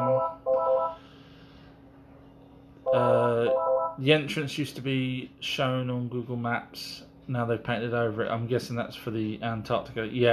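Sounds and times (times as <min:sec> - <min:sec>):
telephone ringing: 0:00.0 - 0:01.0, 0:02.9 - 0:04.0
speech: 0:04.0 - 0:10.3.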